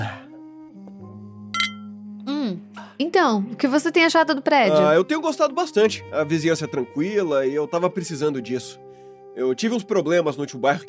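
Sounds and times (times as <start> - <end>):
wine glasses clinking in a toast: 1.6 - 1.9
speech: 3.0 - 10.8.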